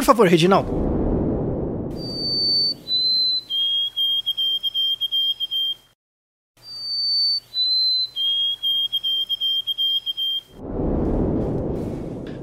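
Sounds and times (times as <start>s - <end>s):
speech: 0.1s - 0.9s
low rumbling noise: 0.4s - 3.3s, 10.5s - 12.4s
sparrow singing: 2.1s - 5.8s, 6.6s - 10.5s.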